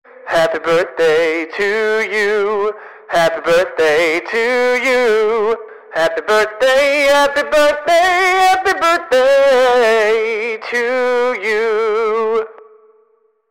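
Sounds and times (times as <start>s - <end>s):
song sung in English on a megaphone: 0.1s - 12.6s.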